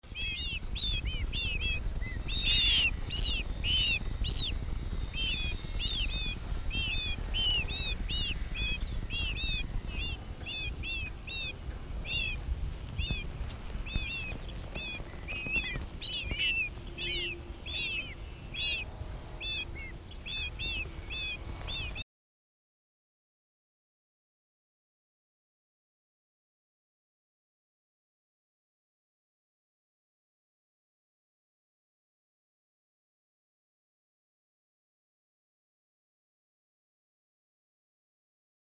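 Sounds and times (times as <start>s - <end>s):
small great kiskadee chicks peeping: 0.1s - 22.0s.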